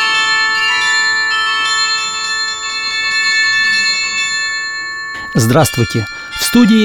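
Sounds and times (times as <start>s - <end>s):
carillon bells ringing: 0.0s - 6.8s
speech: 5.4s - 6.8s.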